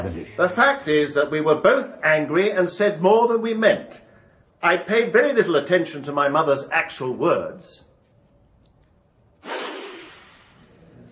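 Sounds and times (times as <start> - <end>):
speech: 0.0 - 4.0, 4.6 - 7.9
sharp breathy sniff through the nose: 9.4 - 10.8.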